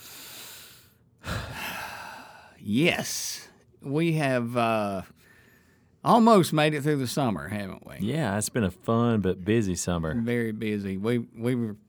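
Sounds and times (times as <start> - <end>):
deep breath taken in: 0.0 - 2.6, 5.2 - 6.0
speech: 2.6 - 5.2, 6.0 - 11.8.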